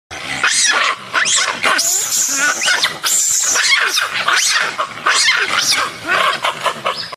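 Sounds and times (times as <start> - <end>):
Japanese macaque calling: 0.3 - 7.1.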